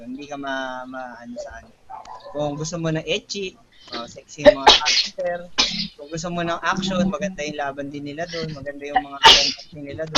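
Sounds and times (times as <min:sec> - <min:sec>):
speech: 0:00.0 - 0:10.1
sneeze: 0:04.4 - 0:05.9, 0:09.2 - 0:10.1.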